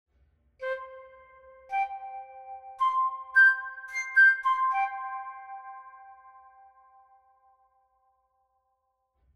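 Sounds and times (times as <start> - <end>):
flute: 0.6 - 7.3.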